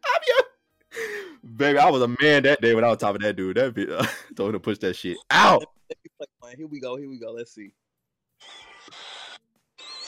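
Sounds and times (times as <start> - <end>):
laughter: 0.0 - 0.5, 4.0 - 4.5, 5.1 - 6.4
loud heavy breathing with a slight whistle: 0.9 - 1.4
speech: 1.6 - 7.8.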